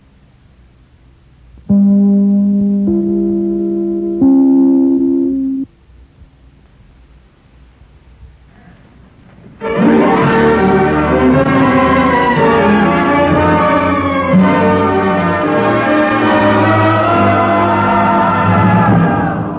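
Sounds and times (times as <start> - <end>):
radio network identification chime notes: 1.7 - 5.7
loud full orchestral fanfare: 9.6 - 19.2.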